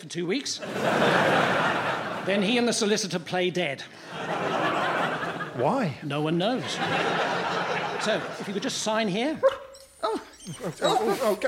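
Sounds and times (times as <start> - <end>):
speech: 0.0 - 4.5, 5.6 - 11.4
laughter: 0.6 - 2.9, 3.9 - 9.4, 10.1 - 11.4
working dog whining and yelping: 9.4 - 11.4.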